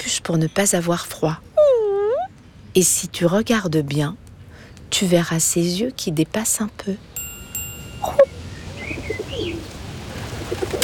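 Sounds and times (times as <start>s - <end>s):
speech: 0.1s - 1.5s, 2.8s - 4.2s, 5.0s - 7.2s
bird chirps: 7.9s - 9.6s
pigeons cooing in a park: 8.1s - 10.8s.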